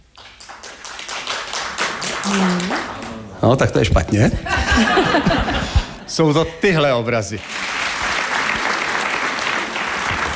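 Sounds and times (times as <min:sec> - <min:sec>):
audience clapping to vote on paintings: 0:00.0 - 0:03.9, 0:07.2 - 0:10.3
speech: 0:02.3 - 0:05.5, 0:06.1 - 0:07.6
laughter: 0:04.2 - 0:06.5.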